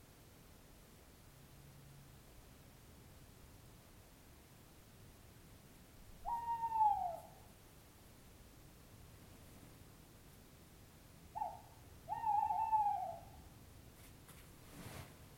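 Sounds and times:
owl hooting: 0:06.2 - 0:07.5, 0:11.3 - 0:13.5.

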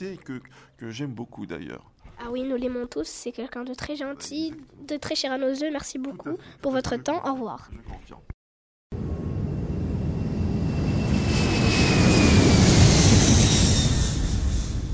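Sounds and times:
speech: 0:00.0 - 0:09.0
loud airplane engine roaring and droning as the aircraft passes: 0:09.0 - 0:14.9.

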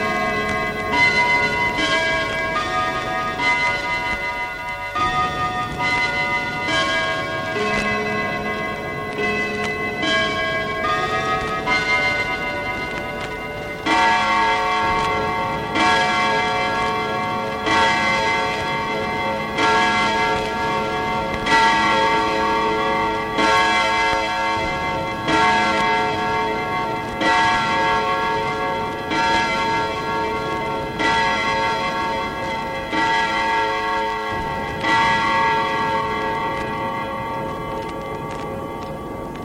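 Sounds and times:
clock chiming the hour: 0:00.0 - 0:39.4.

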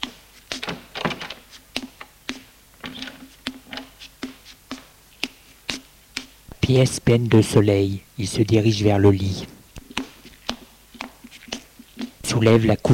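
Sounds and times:
door handle and latch clicking and knocking on a palace bedroom door: 0:00.6 - 0:01.4
speech: 0:06.7 - 0:09.6, 0:12.4 - 0:12.9.

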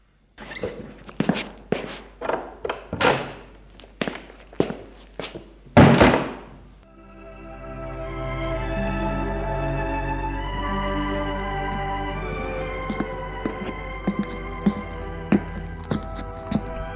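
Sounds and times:
footsteps and thuds as a woman gets up and walks out of a bedroom: 0:00.6 - 0:06.6, 0:10.6 - 0:16.9
heavy thump: 0:05.8 - 0:06.5
steady tonal drone: 0:06.8 - 0:16.9.

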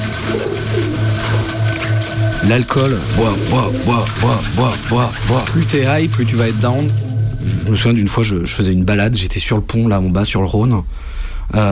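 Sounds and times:
pigeons cooing: 0:00.0 - 0:07.9
speech: 0:02.4 - 0:11.7.

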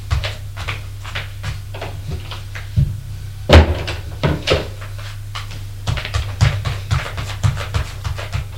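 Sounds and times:
steady low hum: 0:00.0 - 0:08.5
apartment door thudding shut: 0:03.5 - 0:04.6.

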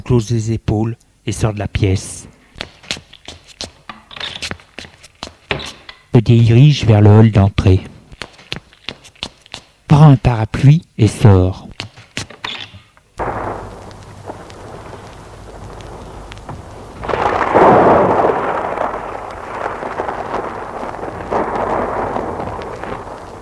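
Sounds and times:
speech: 0:00.1 - 0:02.4, 0:06.1 - 0:08.0, 0:10.1 - 0:11.8
steady wash of pouring rain: 0:13.2 - 0:23.4
storm thunder rolling and rumbling low and heavy: 0:13.2 - 0:23.4.

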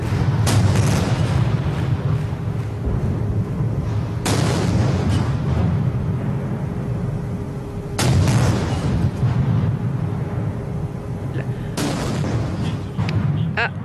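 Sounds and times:
cannons firing a salute: 0:00.0 - 0:11.0, 0:11.7 - 0:13.8
constant low rumble: 0:00.0 - 0:13.8.

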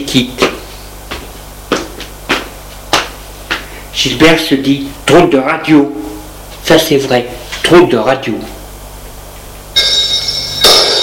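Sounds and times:
speech: 0:00.0 - 0:00.5, 0:04.0 - 0:06.0, 0:06.7 - 0:08.6
telephone ringing with a shrill bell tone: 0:09.8 - 0:11.0.

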